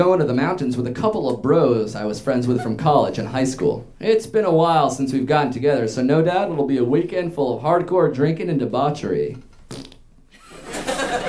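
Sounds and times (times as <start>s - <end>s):
speech: 0.0s - 9.8s
person blowing a raspberry with the mouth imitating a fart: 9.7s - 10.0s
laughter: 10.4s - 11.2s.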